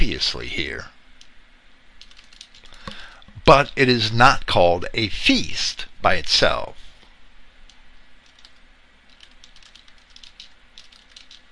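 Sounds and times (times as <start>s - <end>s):
steady low hum: 0.0s - 11.5s
speech: 0.2s - 1.0s, 3.5s - 6.8s
keys being typed on a keyboard: 2.0s - 2.8s, 8.2s - 11.4s.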